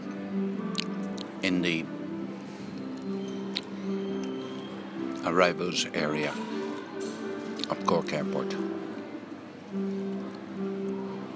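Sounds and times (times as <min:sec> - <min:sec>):
low tonal hum of music: 0:00.0 - 0:11.3
person chewing a croissant: 0:00.7 - 0:01.3, 0:02.7 - 0:04.7, 0:06.5 - 0:07.8
speech: 0:01.4 - 0:02.0, 0:05.3 - 0:06.6, 0:07.7 - 0:08.7.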